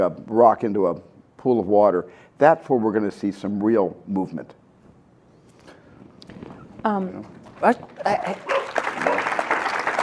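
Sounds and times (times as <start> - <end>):
speech: 0.0 - 4.6, 6.8 - 8.6
pet dog barking and yelping: 8.5 - 9.2.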